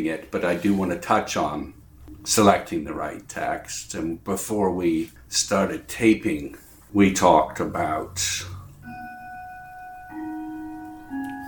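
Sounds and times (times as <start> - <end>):
speech: 0.0 - 8.6
clock chiming the quarter hour with resonant bell notes: 8.8 - 11.4.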